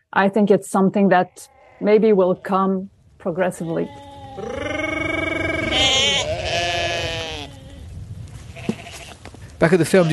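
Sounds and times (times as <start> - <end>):
speech: 0.1 - 4.6, 9.6 - 10.1
sheep bleating: 1.1 - 2.8, 3.4 - 7.9, 8.5 - 9.2, 9.9 - 10.1.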